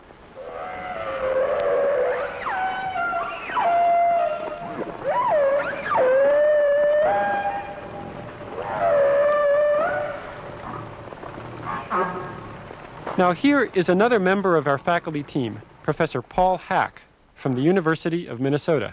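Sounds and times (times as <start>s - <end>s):
soft watery hiss: 0.0s - 18.9s
humpback whale singing in sliding moans and whoops: 0.3s - 12.8s
speech: 13.2s - 18.9s.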